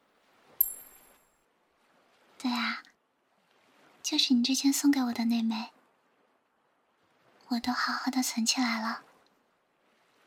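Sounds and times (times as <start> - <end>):
coin clinking: 0.6 - 1.2
speech: 4.1 - 5.8, 7.5 - 9.1.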